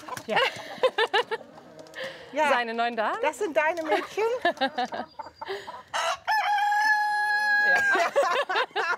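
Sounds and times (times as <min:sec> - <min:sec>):
laughter: 0:00.0 - 0:02.2, 0:03.9 - 0:05.7, 0:07.6 - 0:08.9
hens from a flock clucking on a farm: 0:00.0 - 0:08.9
speech: 0:00.3 - 0:00.7, 0:02.3 - 0:05.7
rooster crowing on a farm: 0:05.9 - 0:08.1.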